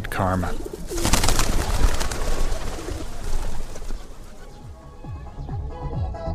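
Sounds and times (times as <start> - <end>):
pigeons cooing at a monastery: 0.0 - 6.0
speech: 0.2 - 1.0
rushing fluttery noise: 0.4 - 4.8.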